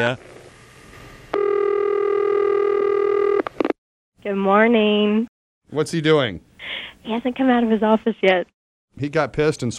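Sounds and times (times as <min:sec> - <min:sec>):
speech: 0:00.0 - 0:00.4, 0:04.2 - 0:09.7
telephone keypad dialing tone: 0:01.4 - 0:03.4.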